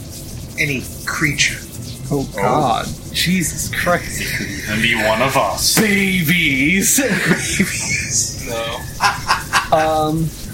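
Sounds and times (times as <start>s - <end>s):
speech: 0.6s - 10.4s
laughter: 3.9s - 10.2s
chicken clucking and squawking: 7.4s - 9.8s.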